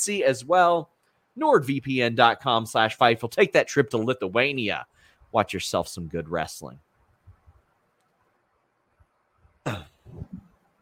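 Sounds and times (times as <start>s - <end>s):
speech: 0.0s - 6.9s, 9.6s - 10.3s
rough throat sounds: 9.6s - 10.5s
person coughing: 9.7s - 10.4s.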